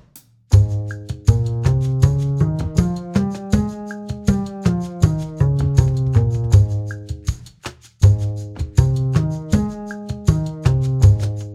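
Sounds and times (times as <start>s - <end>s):
concert A-flat musical scales: 0.6s - 6.8s, 8.8s - 11.4s.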